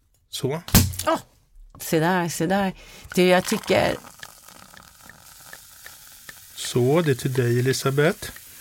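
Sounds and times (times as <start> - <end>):
speech: 0.4 - 4.2, 6.7 - 8.4
champagne fizzing after bottle opened by twisting the cork: 2.8 - 8.5.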